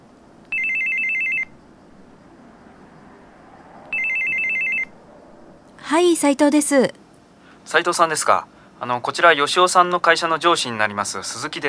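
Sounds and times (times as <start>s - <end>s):
faint hiss: 0.0s - 11.6s
telephone ringing in trilling bursts: 0.5s - 1.5s, 3.9s - 4.9s
speech: 5.9s - 7.0s, 7.7s - 11.6s.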